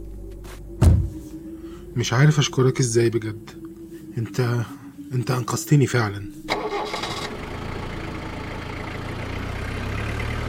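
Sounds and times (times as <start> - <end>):
speech: 2.0 - 3.6, 4.2 - 7.0
car engine cranking, starting and pulling away: 6.4 - 10.4.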